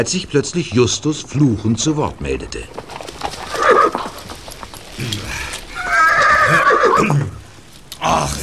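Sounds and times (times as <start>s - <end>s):
speech: 0.0s - 4.0s, 6.8s - 7.4s, 8.0s - 8.4s
horse hooves clip-clopping: 0.0s - 8.0s
horse neighing while being ridden: 3.2s - 7.4s.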